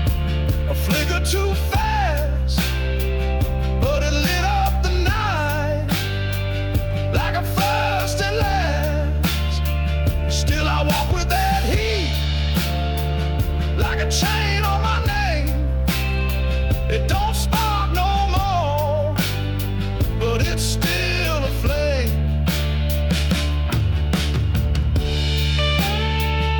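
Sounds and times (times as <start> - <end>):
steady bass notes: 0.0 - 26.5
sustained chords: 0.0 - 26.5
person singing a self-produced song: 0.1 - 6.1, 7.0 - 16.1, 16.7 - 19.4, 20.0 - 22.3
speech: 0.8 - 1.8.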